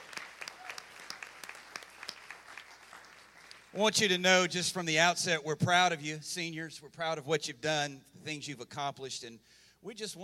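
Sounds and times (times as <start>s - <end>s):
audience applauding during a church service for graduating seniors: 0.0s - 3.8s
speech: 3.7s - 10.2s.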